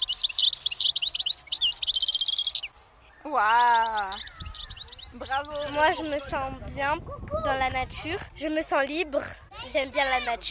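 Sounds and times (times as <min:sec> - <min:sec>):
small bird chirping in a tree: 0:00.0 - 0:06.1
soft outdoor hum: 0:00.0 - 0:10.4
speech: 0:03.2 - 0:04.4, 0:05.1 - 0:10.4.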